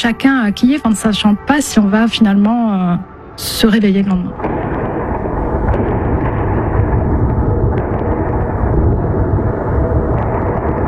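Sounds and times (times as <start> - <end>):
speech: 0.0 - 4.8
air-defense explosions intercepting drones and missiles: 4.3 - 10.8.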